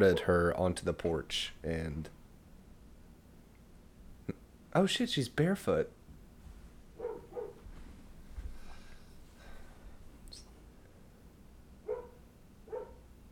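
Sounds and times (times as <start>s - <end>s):
speech: 0.0s - 2.2s, 4.3s - 6.0s
low steady background: 0.0s - 13.3s
dog barking outside: 7.0s - 7.6s, 11.8s - 13.1s.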